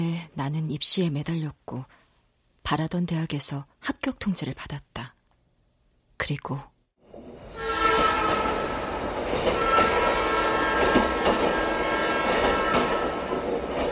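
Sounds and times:
speech: 0.0s - 2.0s, 2.6s - 5.2s, 6.2s - 6.7s
train rushing through the night toward Seoul: 7.0s - 13.9s
train horn sustained tone: 7.5s - 13.5s.

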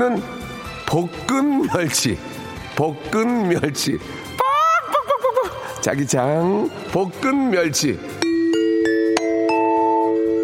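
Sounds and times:
speech: 0.0s - 4.4s, 5.8s - 8.2s
laughter: 4.4s - 5.8s
bright bell-like correct-answer chime: 8.2s - 10.4s.

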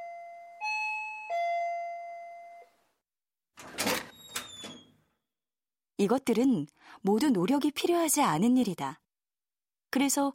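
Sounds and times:
doorbell chiming three-note ding-dong: 0.0s - 2.7s
door clattering open: 3.6s - 5.0s
speech: 6.0s - 9.0s, 10.0s - 10.3s.

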